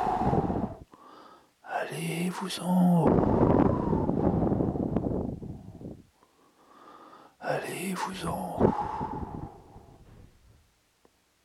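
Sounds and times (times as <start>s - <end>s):
low steady murmuring wind: 0.0s - 0.8s, 2.6s - 6.1s, 7.5s - 10.3s
speech: 2.3s - 4.1s, 8.0s - 8.8s.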